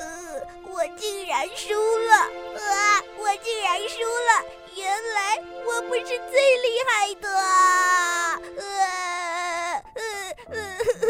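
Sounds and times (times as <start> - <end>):
little rabbit character crying and sobbing: 0.0 - 11.0
speech: 0.8 - 8.8.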